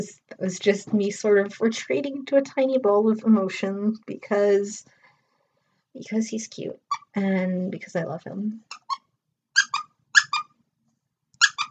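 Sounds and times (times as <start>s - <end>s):
speech: 0.0s - 5.0s, 6.0s - 8.8s
squeezed toy squeaking: 8.7s - 10.6s, 11.4s - 11.6s.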